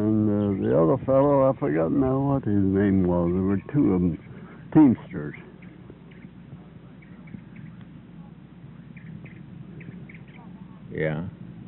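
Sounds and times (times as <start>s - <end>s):
steady low rumble of noise: 0.0s - 11.6s
warblers chirping: 0.0s - 11.6s
speech: 0.8s - 5.5s, 11.0s - 11.4s.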